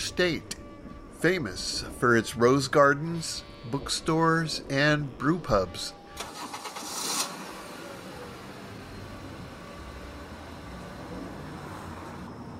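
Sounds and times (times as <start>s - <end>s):
speech: 0.1s - 0.6s, 1.2s - 6.0s
old car with rebuilt engine cranking and starting: 6.0s - 12.5s.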